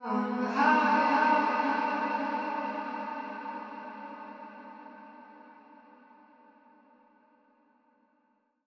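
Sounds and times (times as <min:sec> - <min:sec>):
vocals: 0:00.0 - 0:06.0.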